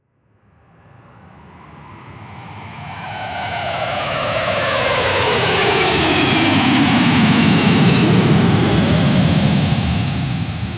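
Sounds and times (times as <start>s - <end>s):
jet taking off: 3.0s - 10.7s.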